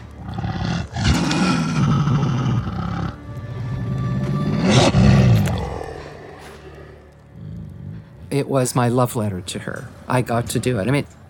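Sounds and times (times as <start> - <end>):
dog vocalizations used as a wolf pack: 0.0 - 3.3, 4.0 - 8.3
speech: 8.4 - 11.2.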